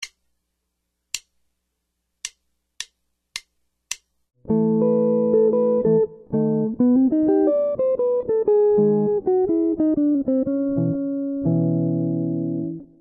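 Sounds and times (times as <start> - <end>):
jazz guitar solo arrangement in thirds and sevenths: 4.4 - 13.0.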